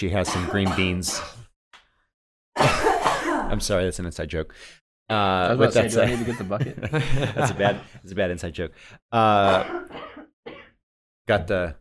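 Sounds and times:
speech: 0.0s - 1.4s, 3.5s - 10.0s, 11.3s - 11.8s
person coughing harshly: 0.3s - 1.5s, 2.6s - 3.6s, 9.4s - 10.8s
laughter: 5.5s - 8.0s.

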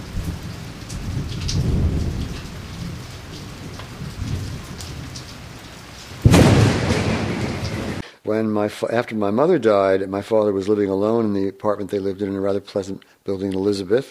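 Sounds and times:
low thunder rumbling: 0.0s - 8.0s
steady rain: 0.0s - 8.0s
loud crack of thunder: 0.2s - 3.2s, 6.2s - 8.0s
speech: 8.3s - 14.0s.

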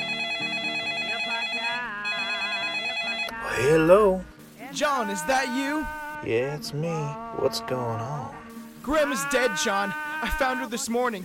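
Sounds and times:
telephone ringing in a home in Florida: 0.0s - 3.4s
speech: 3.6s - 11.2s.

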